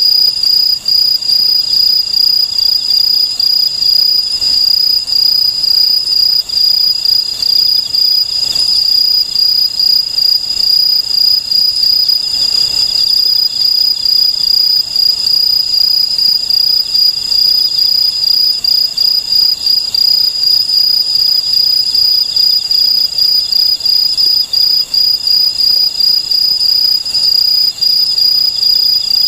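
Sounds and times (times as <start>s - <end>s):
Aomatsumushi tree cricket producing a shrill high-pitched trill: 0.0s - 29.2s.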